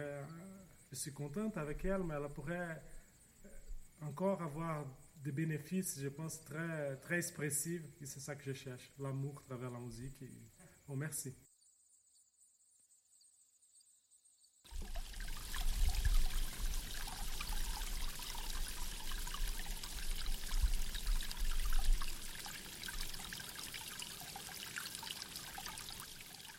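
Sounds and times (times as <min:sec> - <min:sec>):
speech: 0:00.0 - 0:03.0, 0:04.0 - 0:11.4
river water flowing: 0:14.7 - 0:26.5.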